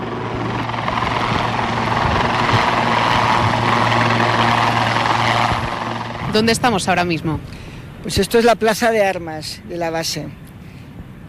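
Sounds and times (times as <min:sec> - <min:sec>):
helicopter hovering and turning at a military base: 0:00.0 - 0:08.4
speech: 0:06.4 - 0:10.4.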